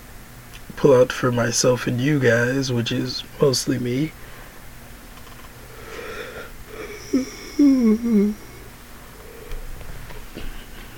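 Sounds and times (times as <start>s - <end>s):
quiet room hum: 0.0s - 10.9s
speech: 0.8s - 4.2s
person yawning: 5.9s - 8.7s.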